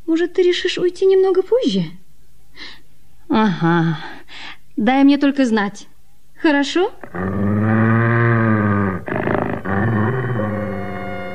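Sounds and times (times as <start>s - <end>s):
speech: 0.1s - 2.0s, 2.6s - 8.1s
huge dog growling and snarling: 7.0s - 11.3s.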